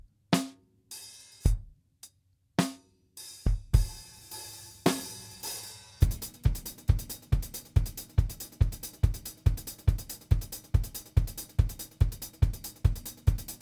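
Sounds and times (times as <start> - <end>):
drums playing in a test: 3.4 - 13.6.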